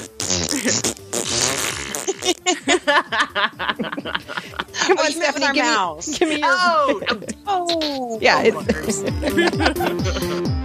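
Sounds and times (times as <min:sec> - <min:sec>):
wet buzzy fart noises blown with the mouth: 0:00.0 - 0:02.5
laughter: 0:00.5 - 0:00.9, 0:01.8 - 0:07.5, 0:08.2 - 0:10.6
speech: 0:00.6 - 0:01.0, 0:03.4 - 0:10.6.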